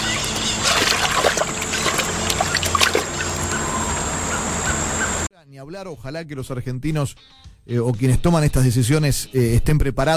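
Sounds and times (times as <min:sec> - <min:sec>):
river water splashing as a person wades ashore: 0:00.0 - 0:04.6
steady low hum: 0:00.0 - 0:05.3
water trickling: 0:00.2 - 0:04.0
speech: 0:05.8 - 0:10.1.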